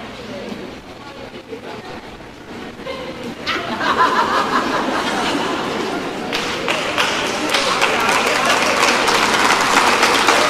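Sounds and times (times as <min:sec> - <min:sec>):
scattered voices: 0:00.0 - 0:10.4
live crowd laughing: 0:02.7 - 0:10.4
applause: 0:06.3 - 0:10.4.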